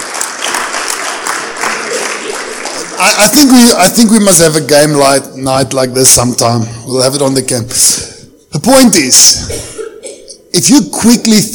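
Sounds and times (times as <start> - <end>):
room full of people clapping: 0.0 - 3.9
speech: 3.0 - 9.7, 10.5 - 11.5.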